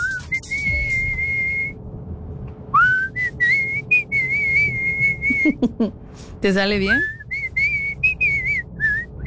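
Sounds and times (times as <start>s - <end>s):
person whistling a melody: 0.0s - 1.7s, 2.8s - 5.6s, 7.0s - 9.2s
speech: 5.5s - 7.2s.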